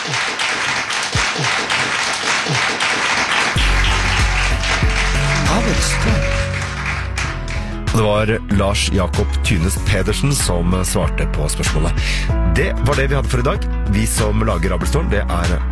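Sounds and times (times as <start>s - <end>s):
crowd applauding: 0.0s - 8.1s
low music: 3.6s - 15.7s
speech: 8.0s - 15.7s.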